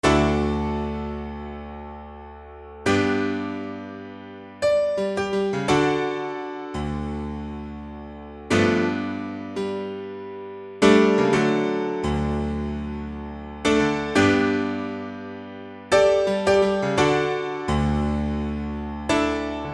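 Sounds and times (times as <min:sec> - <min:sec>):
dry piano: 0:00.0 - 0:19.7.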